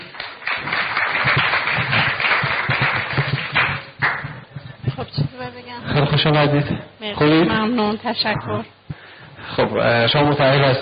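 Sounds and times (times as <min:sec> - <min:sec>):
audience applause: 0:00.0 - 0:04.4
speech: 0:06.2 - 0:08.8, 0:09.6 - 0:10.8.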